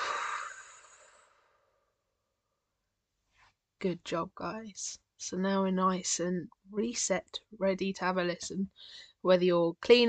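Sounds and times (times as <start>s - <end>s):
deep breath released during a guided relaxation exercise: 0.0s - 1.7s
speech: 3.8s - 10.0s.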